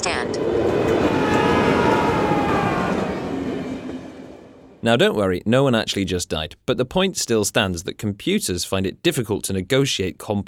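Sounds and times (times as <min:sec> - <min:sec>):
runaway railway trolley rumbling along the track: 0:00.0 - 0:04.9
speech: 0:04.8 - 0:10.4.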